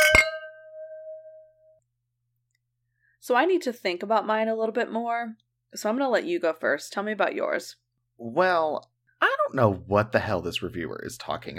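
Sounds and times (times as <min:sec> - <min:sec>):
wine glasses clinking in a toast: 0:00.0 - 0:01.4
speech: 0:03.2 - 0:08.9, 0:09.5 - 0:11.5.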